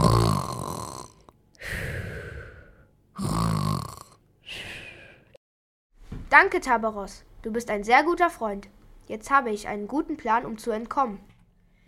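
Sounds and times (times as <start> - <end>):
snoring: 0.0 - 4.2
speech: 6.4 - 11.3.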